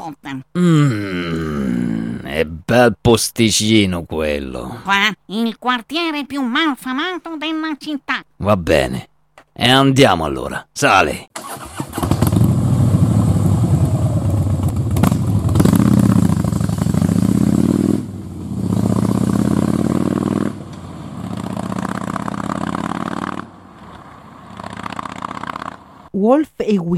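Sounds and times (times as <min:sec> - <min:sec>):
speech: 0:00.1 - 0:01.4, 0:02.7 - 0:12.1, 0:26.1 - 0:26.9
motorcycle engine starting and riding off through gear changes: 0:11.4 - 0:26.1.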